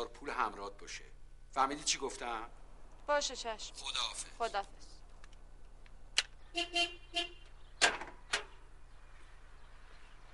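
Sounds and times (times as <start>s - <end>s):
speech: 0.0s - 4.9s, 6.5s - 8.5s
car horn giving short honks: 6.5s - 7.6s
sharp clicks and thumps of vehicle noise: 7.3s - 8.7s.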